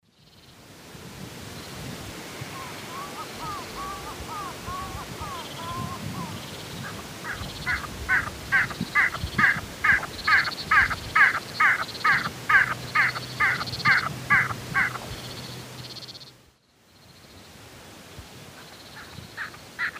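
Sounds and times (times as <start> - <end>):
Gallinago paraguaiae calls in the Eastern Lowlands of South America: 2.5 - 16.4.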